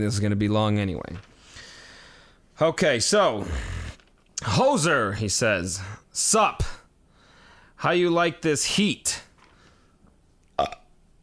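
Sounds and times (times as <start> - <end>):
speech: 0.0 - 1.3, 2.6 - 3.8, 4.4 - 6.8, 7.8 - 9.2, 10.6 - 10.8
loud burp: 3.3 - 4.1, 10.6 - 10.9.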